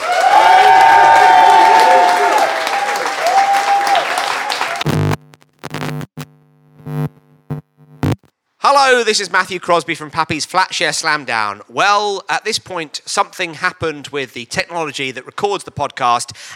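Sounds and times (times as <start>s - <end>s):
audience whoops and cheers: 0.0s - 4.8s
large audience applause: 0.0s - 4.9s
speech: 8.8s - 16.5s.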